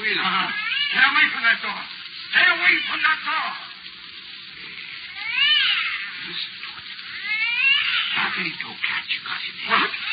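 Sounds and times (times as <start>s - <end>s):
speech: 0.1s - 3.7s, 6.3s - 6.6s, 8.2s - 10.1s
cat meowing drawn-out: 0.2s - 1.3s, 5.1s - 6.5s, 7.1s - 8.8s, 9.7s - 10.1s.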